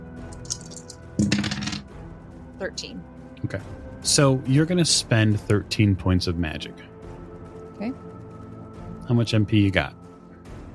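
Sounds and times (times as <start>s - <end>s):
dice rattling and clattering across a hard surface: 0.4s - 1.8s
speech: 2.6s - 6.9s, 7.8s - 8.2s, 9.1s - 10.0s.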